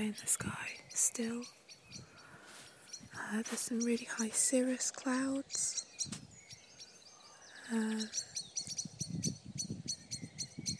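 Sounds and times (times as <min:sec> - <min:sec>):
speech: 0:00.0 - 0:02.1, 0:03.2 - 0:06.2, 0:07.7 - 0:08.3
blackbirds calling in a dawn chorus: 0:00.0 - 0:10.7
chirps and whistles from several birds: 0:00.0 - 0:10.7.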